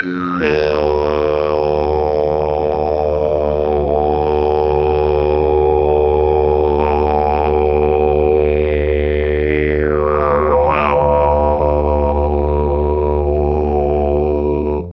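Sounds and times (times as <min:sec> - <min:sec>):
long didgeridoo sound: 0:00.0 - 0:14.9.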